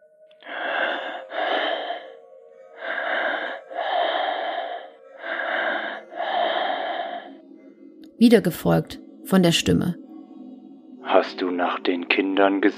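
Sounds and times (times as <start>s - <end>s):
heavy raspy breathing through a telephone line: 0.4s - 2.2s, 2.8s - 7.4s
speech: 8.2s - 10.0s, 11.2s - 12.7s.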